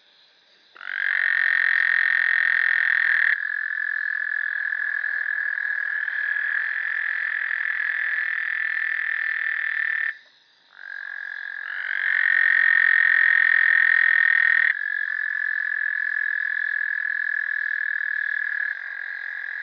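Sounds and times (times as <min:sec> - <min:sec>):
Incilius valliceps toad: 0:00.0 - 0:19.6.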